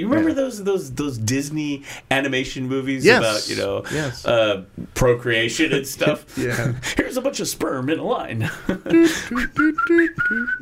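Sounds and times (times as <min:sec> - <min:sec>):
speech: 0:00.0 - 0:10.6
person whistling a bouncy tune: 0:09.3 - 0:10.6.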